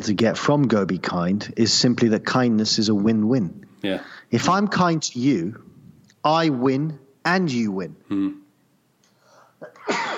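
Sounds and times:
speech: 0.0s - 8.4s
person sneezing: 9.6s - 10.1s.

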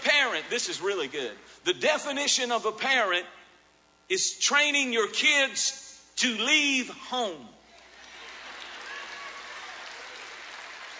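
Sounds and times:
audience clapping: 0.0s - 1.6s, 7.7s - 10.9s
speech: 0.4s - 3.4s, 4.1s - 7.6s.

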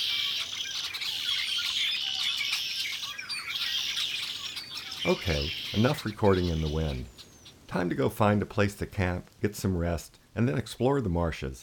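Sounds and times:
Red-winged Blackbird flock chipping, squeaking and whistling in a tree: 0.0s - 7.9s
speech: 5.0s - 11.6s.

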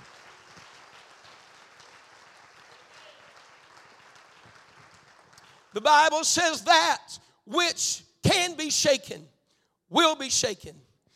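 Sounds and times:
audience clapping hands: 0.0s - 5.9s
speech: 5.8s - 9.3s, 9.9s - 10.8s.

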